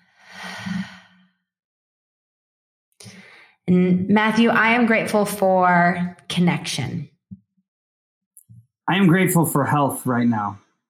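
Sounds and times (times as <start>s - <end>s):
deep breath in and out during a guided gratitude exercise: 0.0s - 1.3s, 3.0s - 3.6s
speech: 3.7s - 7.1s, 8.9s - 10.6s.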